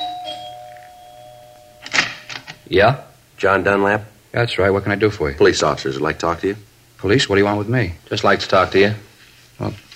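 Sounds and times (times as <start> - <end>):
electric doorbell buzzing: 0.0 - 2.7
speech: 2.7 - 9.8.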